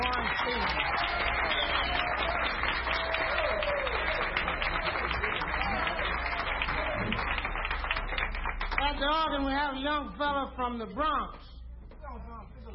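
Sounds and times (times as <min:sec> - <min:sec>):
crowd applauding: 0:00.0 - 0:09.5
speech: 0:09.1 - 0:11.5.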